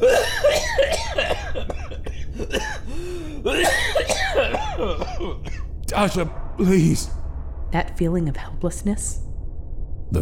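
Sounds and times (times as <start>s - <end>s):
person coughing harshly and spluttering wetly: 0.0s - 5.7s
strained gasping breaths: 2.8s - 3.5s
speech: 6.0s - 9.2s.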